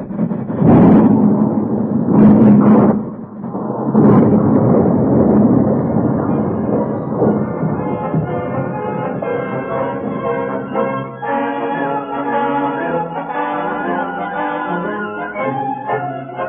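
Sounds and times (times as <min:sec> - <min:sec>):
heavy train thundering onto a bridge: 0:00.0 - 0:16.4.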